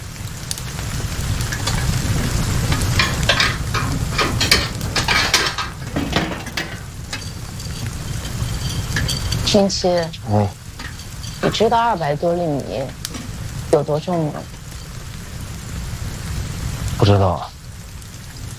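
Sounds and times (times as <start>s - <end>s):
low constant rumble: 0.0s - 17.0s
metal scraping, clattering and rattling as a stove fire is stoked: 1.5s - 12.3s
speech: 9.5s - 10.6s, 11.4s - 13.0s, 13.7s - 14.6s, 17.0s - 17.5s.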